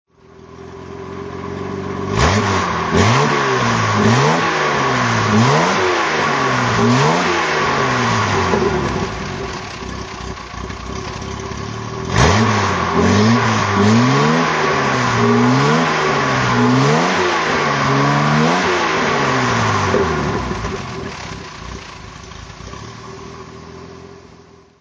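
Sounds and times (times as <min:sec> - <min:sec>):
1942 Jaguar E-Type engine throttle: 0:00.9 - 0:24.5.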